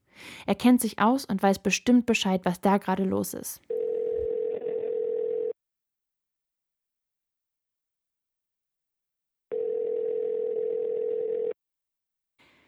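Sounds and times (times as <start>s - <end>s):
speech: 0.5s - 3.7s
telephone ringback tone of an outgoing call: 3.7s - 5.6s, 9.5s - 11.6s.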